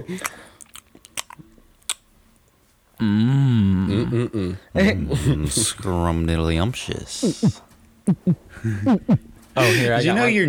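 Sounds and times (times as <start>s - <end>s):
speech: 0.0s - 0.5s, 3.0s - 3.4s, 4.0s - 10.4s
person munching pretzels: 0.0s - 3.1s.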